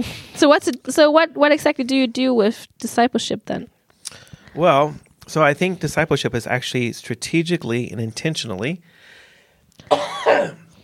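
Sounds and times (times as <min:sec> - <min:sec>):
speech: 0:00.0 - 0:09.0, 0:09.7 - 0:10.6
person coughing: 0:09.8 - 0:10.7.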